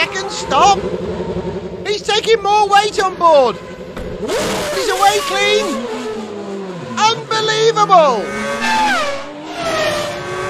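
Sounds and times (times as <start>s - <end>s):
race car engine revving loudly: 0.0s - 10.4s
race car tires screeching as the car spins off: 0.0s - 10.4s
speech: 0.5s - 5.9s, 7.0s - 9.0s.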